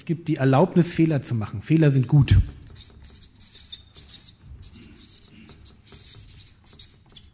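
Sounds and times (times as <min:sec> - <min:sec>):
speech: 0:00.0 - 0:02.6
pen writing by hand: 0:02.4 - 0:07.3.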